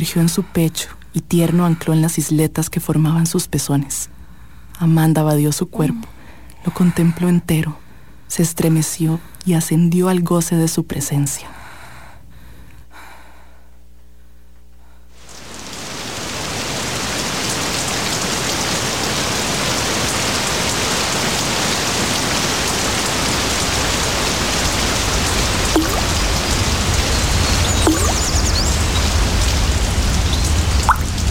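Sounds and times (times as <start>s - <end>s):
speech: 0.0s - 4.2s, 4.8s - 11.6s
steady rain pouring down on surfaces: 15.2s - 31.2s.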